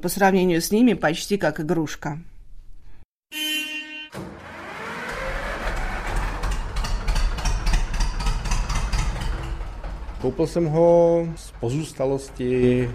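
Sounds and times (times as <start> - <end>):
speech: 0.0 - 2.3, 10.2 - 12.9
vintage tractor engine starting and running: 4.2 - 12.9.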